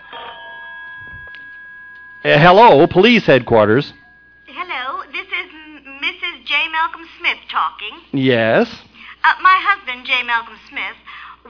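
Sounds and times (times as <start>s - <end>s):
telephone bell ringing at a police headquarters: 0.0s - 5.3s
speech: 2.2s - 4.0s, 7.2s - 11.4s.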